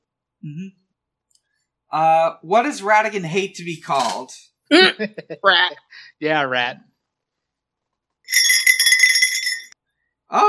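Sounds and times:
speech: 0:00.4 - 0:00.9, 0:01.9 - 0:06.9, 0:10.3 - 0:10.4
small jingle bell being shaken: 0:08.3 - 0:09.8.

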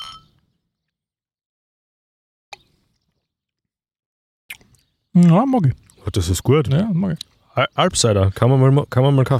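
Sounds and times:
glasses clinking in a toast: 0:00.0 - 0:00.4
sipping a drink: 0:04.5 - 0:04.9
speech: 0:05.2 - 0:09.3.

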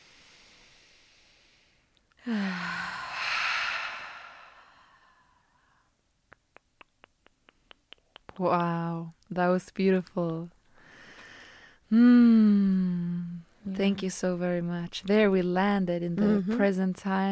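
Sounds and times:
deep breath in during guided meditation: 0:00.0 - 0:05.9, 0:10.8 - 0:11.8
speech: 0:02.2 - 0:02.6, 0:08.4 - 0:10.6, 0:11.9 - 0:17.3.

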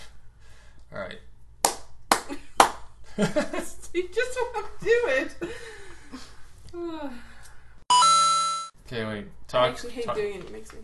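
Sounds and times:
hand claps: 0:01.6 - 0:02.9
speech: 0:03.2 - 0:07.3, 0:08.9 - 0:10.8.

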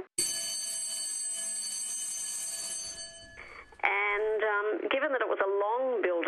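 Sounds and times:
old house doorbell ringing: 0:00.0 - 0:04.4
speech: 0:04.8 - 0:06.2.

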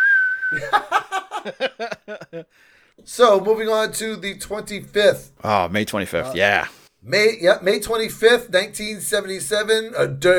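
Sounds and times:
slide whistle note sagging in pitch: 0:00.0 - 0:00.6
laughter: 0:00.5 - 0:02.5
speech: 0:00.5 - 0:10.3.

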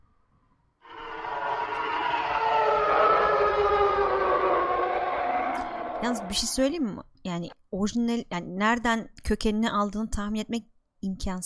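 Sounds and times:
TIE Fighter starfighter engine scream sound effect: 0:00.9 - 0:06.6
speech: 0:06.1 - 0:11.4.

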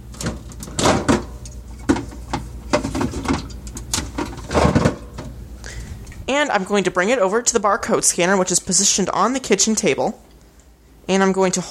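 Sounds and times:
refrigerator door opening in a kitchen: 0:00.0 - 0:05.4
speech: 0:06.3 - 0:10.3, 0:11.1 - 0:11.6.

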